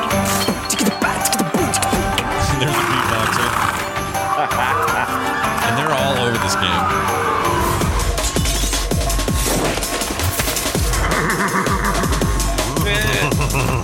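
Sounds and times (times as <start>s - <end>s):
dense loud game soundtrack with rapid percussive hits: 0.0s - 13.8s
laughter: 0.8s - 6.9s, 10.9s - 13.8s
horse whinny sound effect from a game: 2.4s - 4.0s, 4.8s - 8.7s, 10.9s - 12.4s.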